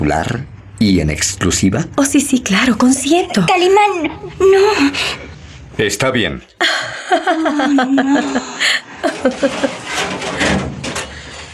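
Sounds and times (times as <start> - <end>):
speech: 0.0 - 10.0
person chuckling: 6.6 - 9.9
helicopter door closing with scrape and thud: 9.2 - 11.5.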